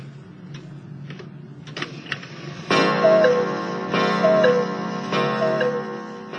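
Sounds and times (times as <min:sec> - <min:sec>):
cuckoo clock calling: 0:02.9 - 0:06.0
cuckoo clock ringing chime: 0:02.9 - 0:06.3.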